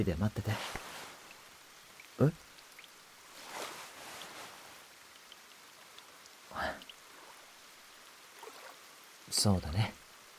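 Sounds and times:
speech: 0.0 - 0.8, 2.2 - 2.4, 9.4 - 10.0
rain falling steadily: 0.0 - 10.3.

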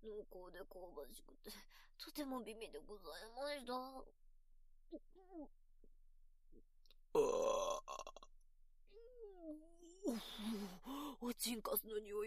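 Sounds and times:
speech: 0.0 - 4.2, 4.9 - 5.6, 6.5 - 8.2, 9.0 - 12.2
loud rumbling burp: 7.2 - 8.3.

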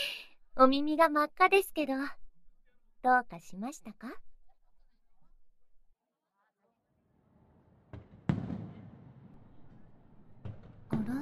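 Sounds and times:
speech: 0.6 - 2.2, 3.0 - 4.3
fireworks exploding: 7.4 - 9.8.

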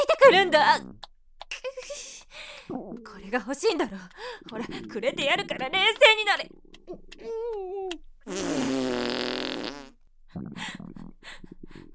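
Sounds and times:
speech: 0.3 - 1.0, 2.7 - 9.2
long sputtering fart: 2.7 - 7.2, 8.2 - 11.6.

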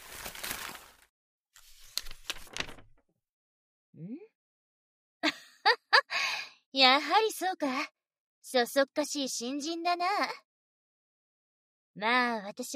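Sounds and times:
paper letter being unfolded and rustled: 0.0 - 3.0
speech: 6.8 - 10.4, 12.0 - 12.7.

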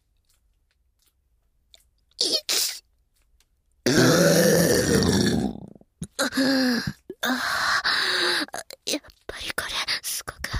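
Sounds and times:
woman burping into a listener's ear: 3.9 - 6.4
woman's breathy gasps: 6.2 - 8.5.

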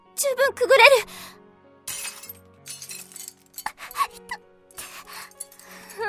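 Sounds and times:
speech: 0.2 - 1.4
glass smashed with a large stone: 1.9 - 4.0, 5.3 - 5.9.

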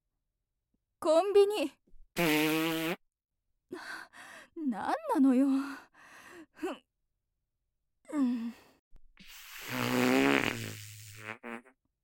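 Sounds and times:
speech: 1.0 - 3.0, 4.6 - 5.9, 6.6 - 6.8
long loud buzzing fart: 2.2 - 3.0, 9.3 - 11.8
short breathy vocal sighs and grunts: 8.0 - 8.8.

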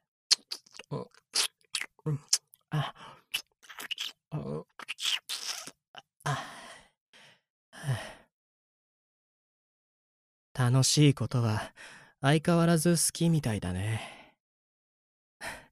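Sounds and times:
crunchy food being chewed: 0.3 - 2.4, 3.3 - 4.2, 4.8 - 5.8
speech: 2.0 - 3.0, 10.7 - 14.2.

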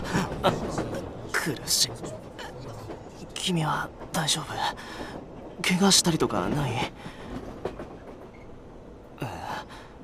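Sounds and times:
crowded commuter train running on rails heard from inside the carriage: 0.0 - 10.0
speech: 0.4 - 0.7, 1.5 - 7.2.

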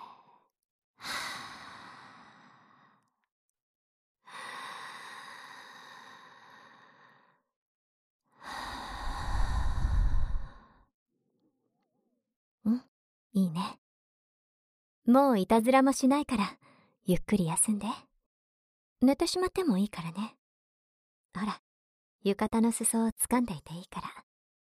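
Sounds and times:
slow deep human breathing: 1.0 - 3.1, 4.3 - 7.4, 8.4 - 10.8
speech: 15.1 - 18.1, 19.0 - 20.4, 21.3 - 21.6, 22.2 - 24.2.

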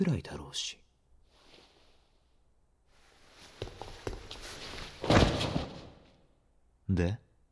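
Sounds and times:
footsteps of someone running across the floor: 3.5 - 5.9.

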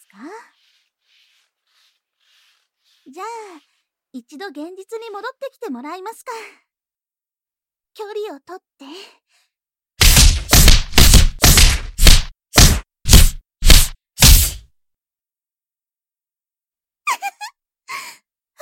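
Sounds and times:
speech: 3.1 - 6.7, 8.0 - 9.4
loud punch impacts: 10.0 - 14.6.

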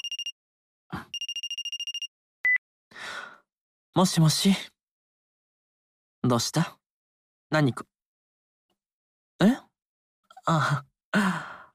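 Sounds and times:
phone ringtone electronic trill for an incoming call: 0.0 - 0.3, 1.1 - 2.1
speech: 4.0 - 4.7, 6.2 - 6.8, 7.5 - 7.9, 9.4 - 9.6, 10.4 - 11.5.

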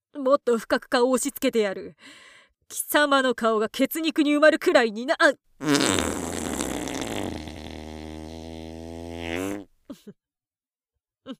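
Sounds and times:
speech: 0.2 - 6.2, 10.0 - 10.2
long loud buzzing fart: 5.6 - 9.7.

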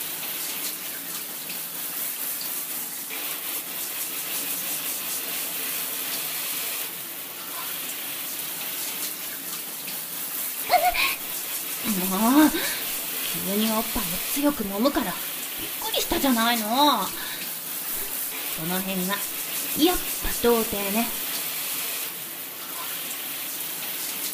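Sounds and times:
shower water spraying: 0.0 - 24.3
water splashing: 10.7 - 21.4
speech: 12.0 - 12.8, 13.4 - 17.2, 18.6 - 21.2.

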